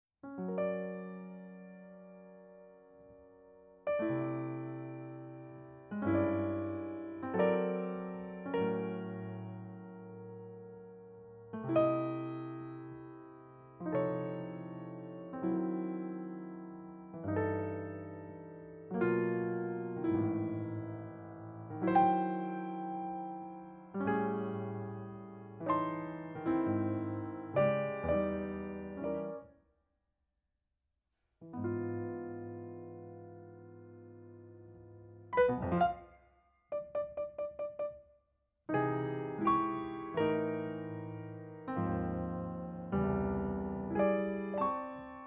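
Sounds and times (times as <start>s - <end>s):
piano improvisation: 0.2s - 29.5s, 31.5s - 38.0s, 38.7s - 45.2s.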